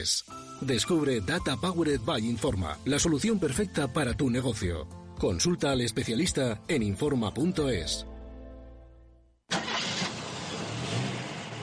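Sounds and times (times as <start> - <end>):
speech: 0.0 - 8.1
car engine cranking and starting: 9.5 - 11.6.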